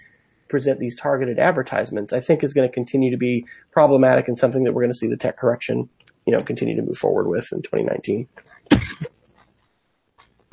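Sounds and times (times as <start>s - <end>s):
speech: 0.5s - 9.1s
person coughing: 8.6s - 9.1s.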